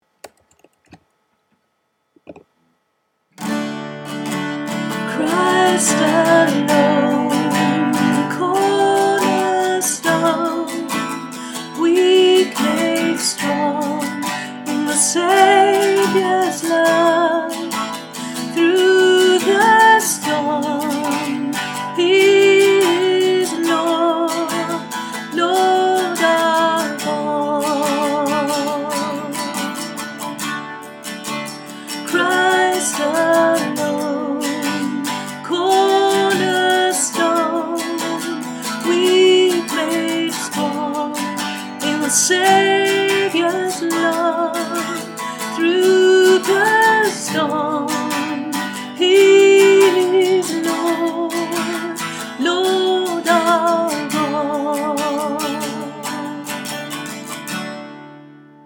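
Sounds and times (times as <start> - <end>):
soprano singing: 4.8 - 30.0, 31.9 - 56.5.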